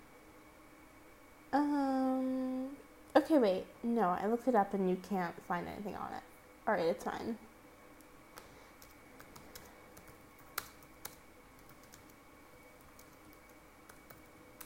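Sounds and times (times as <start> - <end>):
low hiss: 0.0 - 14.6
speech: 3.3 - 7.5
someone typing on a computer keyboard: 8.8 - 14.6.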